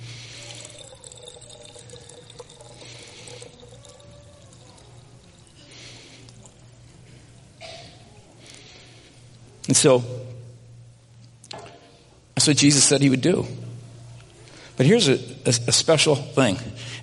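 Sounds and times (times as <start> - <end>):
liquid pouring into a container: 0.0 - 7.5
low steady hum: 0.0 - 16.0
speech: 9.7 - 10.2, 12.4 - 13.7, 14.8 - 17.0.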